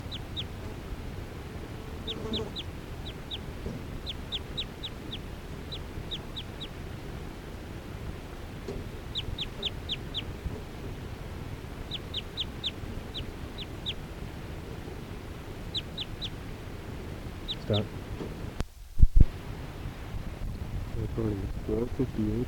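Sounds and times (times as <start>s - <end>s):
decoy bird calling in short high thin chirps: 0.0s - 0.6s, 2.0s - 6.8s, 8.7s - 10.5s, 11.8s - 14.1s, 15.5s - 16.4s, 17.4s - 17.9s
steady low hum: 0.0s - 22.4s
speech: 17.7s - 18.0s.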